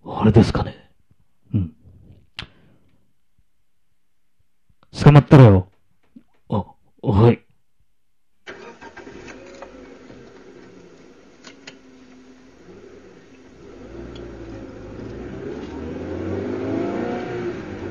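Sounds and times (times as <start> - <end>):
speech: 0.2 - 0.8, 5.1 - 5.7, 6.5 - 7.4
car engine starting and revving: 8.5 - 17.9.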